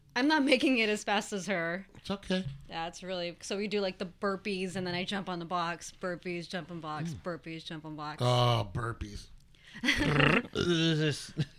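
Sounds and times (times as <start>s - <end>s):
speech: 0.2s - 11.5s
long croaky burps: 9.8s - 11.2s
brief grunting sound: 9.9s - 11.3s.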